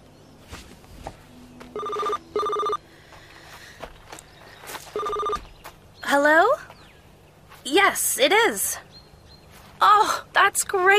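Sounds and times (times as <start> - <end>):
soft footsteps: 0.4 - 2.2, 3.0 - 5.9, 6.6 - 7.8
mobile phone ringing with short bright electronic tones: 1.7 - 2.8, 4.9 - 5.5
speech: 8.2 - 8.8, 10.7 - 10.9.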